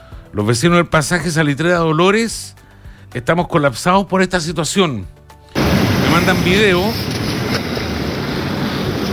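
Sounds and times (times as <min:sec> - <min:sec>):
speech: 0:00.4 - 0:05.2, 0:06.2 - 0:07.2
water gushing from an overflowing sewer chamber: 0:05.6 - 0:09.1.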